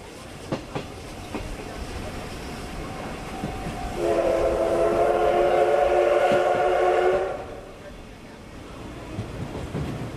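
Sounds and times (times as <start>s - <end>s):
steam locomotive train running on rails with rhythmic clacking: 0.0s - 10.1s
steam locomotive whistle: 3.9s - 7.7s.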